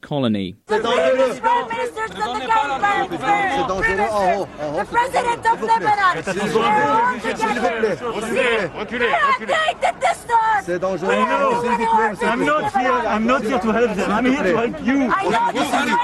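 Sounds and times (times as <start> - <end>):
speech: 0.1 - 16.0
individual shouts from the crowd: 0.7 - 13.1
dense loud crowd chattering and calling out in a street of Beirut, Lebanon: 0.7 - 16.0.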